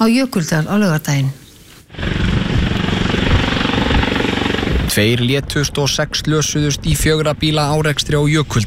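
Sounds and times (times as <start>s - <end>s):
speech: 0.0s - 2.1s, 5.0s - 8.6s
Icelandic Coast Guard helicopter flying: 1.9s - 8.5s.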